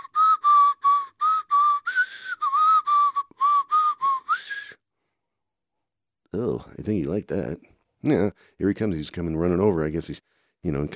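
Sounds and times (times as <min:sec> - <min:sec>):
whistle blown in short shrill toots: 0:00.0 - 0:04.8
speech: 0:06.4 - 0:10.9.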